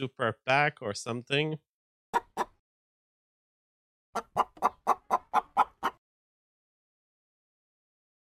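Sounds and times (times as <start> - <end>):
speech: 0.0 - 1.7
chicken clucking: 2.2 - 2.6, 4.2 - 6.0.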